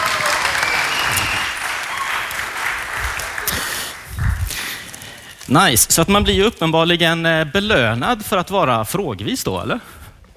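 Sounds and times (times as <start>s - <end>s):
claps: 0.0s - 5.0s
sizable audience applause: 0.0s - 5.3s
speech: 5.5s - 10.0s.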